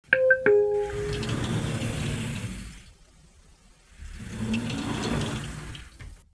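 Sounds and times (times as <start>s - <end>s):
lift: 0.2s - 3.1s, 3.8s - 6.2s.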